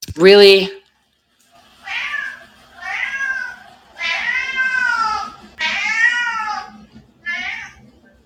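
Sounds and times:
speech: 0:00.2 - 0:00.8
cat meowing loudly: 0:01.9 - 0:07.8.

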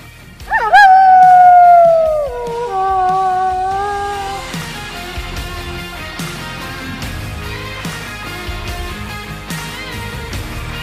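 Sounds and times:
faint rhythmic background: 0:00.0 - 0:10.8
dog howling: 0:00.5 - 0:04.6.

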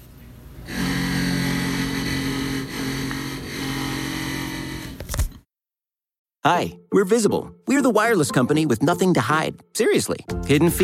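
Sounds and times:
power drill whirring: 0:00.7 - 0:05.4
speech: 0:06.4 - 0:10.8.

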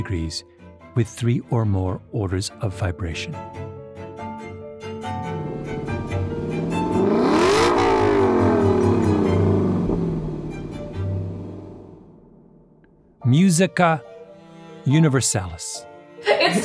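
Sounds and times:
speech: 0:00.0 - 0:03.7, 0:13.2 - 0:14.1, 0:14.9 - 0:16.6
Lexus LC sports car engine revving: 0:05.0 - 0:13.0.

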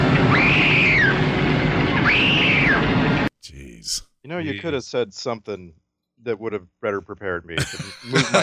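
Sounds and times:
shrill high-pitched screams: 0:00.2 - 0:01.3, 0:02.0 - 0:02.8
speech: 0:04.3 - 0:08.4
laughter: 0:07.6 - 0:08.4.

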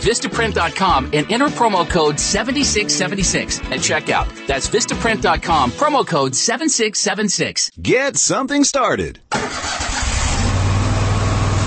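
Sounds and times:
speech: 0:00.0 - 0:09.8
Kubota Commander zero-turn lawn mower engine starting and revving: 0:09.3 - 0:11.6.

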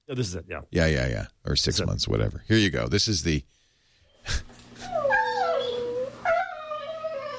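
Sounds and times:
speech: 0:00.1 - 0:03.6, 0:04.2 - 0:04.5
dog whimpering in high-pitched whines: 0:04.8 - 0:07.3.

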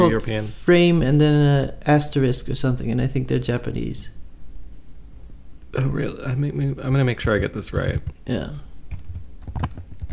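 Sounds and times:
speech: 0:00.0 - 0:04.2, 0:05.7 - 0:08.7, 0:09.6 - 0:10.1
typing quickly on a computer keyboard: 0:08.9 - 0:10.1.

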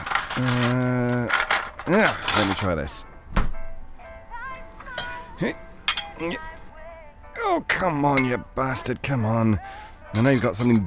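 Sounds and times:
speech: 0:00.4 - 0:03.1, 0:05.4 - 0:05.6, 0:06.2 - 0:06.5, 0:07.5 - 0:10.8
sharp metal tool tapping a glass bottle stopper: 0:05.0 - 0:05.3, 0:05.9 - 0:06.2, 0:08.2 - 0:08.5, 0:10.1 - 0:10.8.

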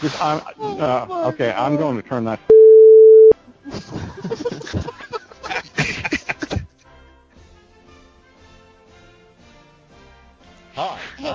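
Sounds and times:
speech: 0:00.0 - 0:02.5, 0:03.6 - 0:04.8
short loud electronic telephone tone: 0:02.5 - 0:03.4
people chuckling: 0:03.6 - 0:06.8.

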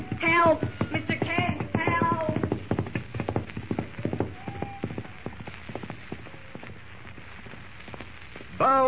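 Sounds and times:
wild unbroken horse galloping into the darkness: 0:00.0 - 0:06.8
speech: 0:00.4 - 0:00.9.

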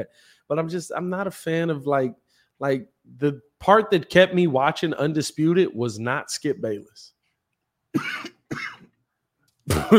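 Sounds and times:
speech: 0:00.0 - 0:07.2, 0:07.9 - 0:08.8, 0:09.7 - 0:09.9
harsh raspy coughs: 0:07.9 - 0:09.0, 0:09.7 - 0:09.9.

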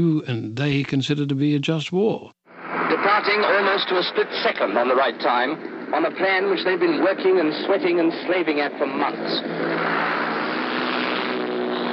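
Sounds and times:
speech: 0:00.0 - 0:09.6
paratroop propeller transport planes droning overhead: 0:03.5 - 0:11.9.

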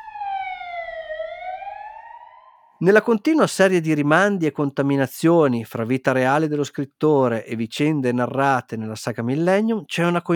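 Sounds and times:
ambulance siren wailing: 0:00.0 - 0:02.8
speech: 0:02.8 - 0:10.3.

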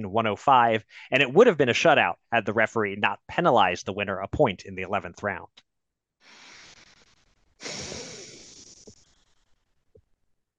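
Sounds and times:
speech: 0:00.0 - 0:05.6, 0:07.6 - 0:08.0
deep breathy exhales: 0:06.2 - 0:09.3.

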